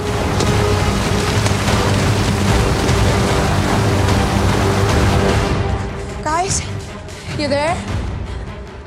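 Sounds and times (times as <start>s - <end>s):
heavy rain pouring: 0.0s - 6.0s
faint low rumbles: 0.0s - 8.6s.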